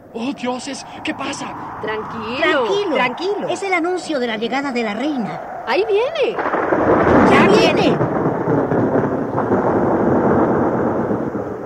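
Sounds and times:
thunder rumbling: 0.0s - 11.6s
speech: 0.1s - 8.0s.

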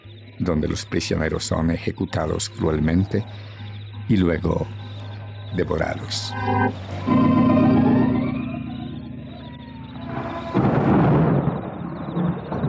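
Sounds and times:
speech: 0.4s - 4.8s, 5.5s - 7.4s
deep droning roar-like tone: 4.6s - 11.3s
loud thunderclap rumbling heavily: 10.0s - 12.6s.

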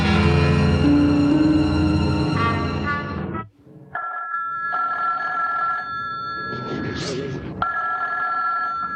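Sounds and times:
dense swell of music-like sound: 0.0s - 3.6s
telephone bell ringing: 4.0s - 7.0s, 7.6s - 8.9s.

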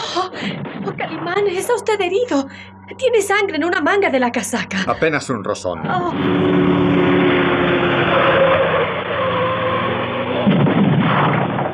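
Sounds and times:
car engine roaring while speeding along a winding road: 0.0s - 11.7s
speech: 0.2s - 7.0s
car crashing through a wooden roadside fence: 10.1s - 11.7s.

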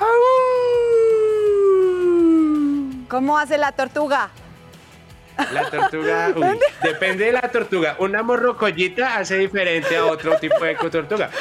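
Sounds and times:
human voice imitating a wolf howl: 0.0s - 3.1s
speech: 3.1s - 4.4s, 5.4s - 11.3s
laughter: 5.4s - 7.7s, 9.6s - 11.3s.

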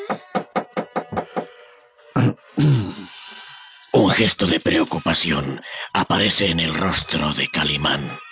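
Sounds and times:
speech: 0.1s - 0.3s, 4.1s - 8.2s
knocking on a locked door: 0.1s - 1.5s.

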